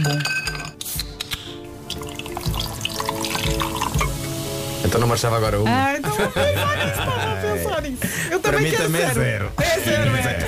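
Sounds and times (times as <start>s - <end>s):
speech: 0.0s - 0.4s, 4.9s - 10.4s
bright crackling fizz of a carbonated drink: 0.8s - 6.0s
carbonated drink pouring into a glass: 1.8s - 5.2s
laughter: 5.9s - 8.6s.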